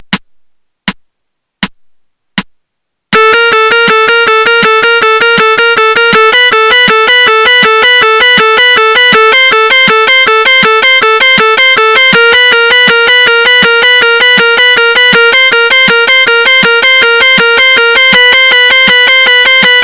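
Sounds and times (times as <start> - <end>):
legato exercise on guitar: 3.2 - 19.8.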